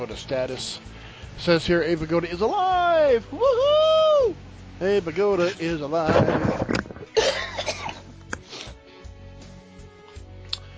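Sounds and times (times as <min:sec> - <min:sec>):
speech: 0:00.0 - 0:06.7
low steady hum: 0:00.2 - 0:08.4
sharp cough: 0:07.1 - 0:08.1.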